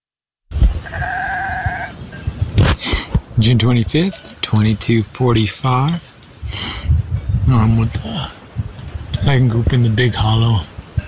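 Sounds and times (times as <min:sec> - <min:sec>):
faint outdoor noise: 0:00.5 - 0:11.0
sheep bleating at night: 0:00.8 - 0:02.0
speech: 0:03.4 - 0:06.7, 0:07.5 - 0:08.4, 0:09.2 - 0:10.7.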